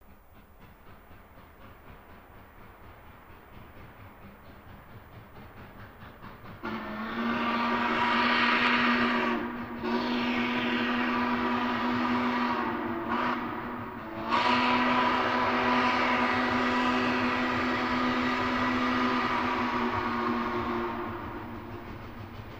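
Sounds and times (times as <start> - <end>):
steam train passing: 0.0 - 22.5
steam train horn: 6.6 - 21.9.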